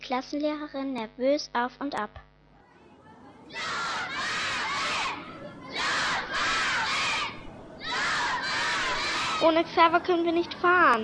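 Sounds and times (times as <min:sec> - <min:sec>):
speech: 0:00.1 - 0:02.3, 0:09.4 - 0:11.0
school class of children shouting loudly together before a class trip: 0:02.6 - 0:09.7.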